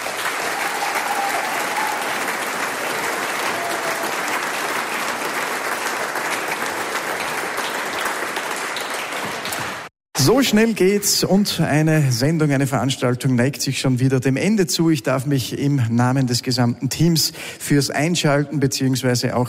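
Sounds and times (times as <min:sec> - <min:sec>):
large audience applauding: 0:00.0 - 0:09.9
speech: 0:10.2 - 0:19.4.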